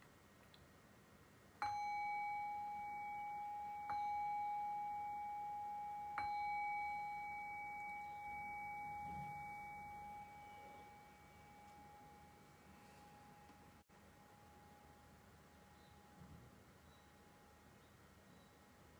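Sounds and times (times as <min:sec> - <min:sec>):
meditation bell ringing: 0:01.6 - 0:16.2.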